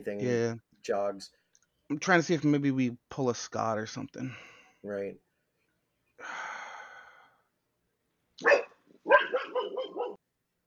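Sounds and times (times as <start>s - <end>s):
speech: 0.0s - 5.2s
dog barking: 8.4s - 10.2s.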